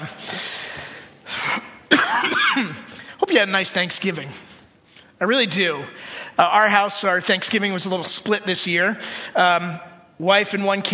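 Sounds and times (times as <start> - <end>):
speech: 0.0 - 0.3, 3.4 - 4.5, 5.2 - 10.9
person with a lingering cough hacking: 1.6 - 2.9.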